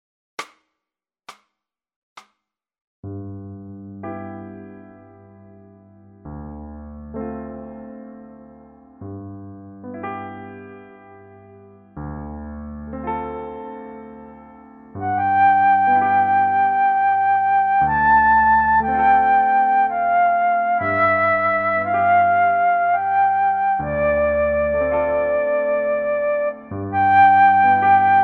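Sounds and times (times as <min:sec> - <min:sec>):
piano solo: 0:07.0 - 0:28.2
flute: 0:15.0 - 0:28.2.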